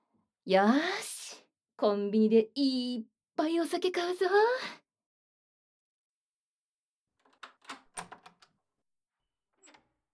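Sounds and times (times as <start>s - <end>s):
speech: 0.5s - 1.1s, 1.8s - 4.8s
apartment front door being unlocked and opened in cold weather: 7.2s - 8.6s, 9.6s - 10.1s.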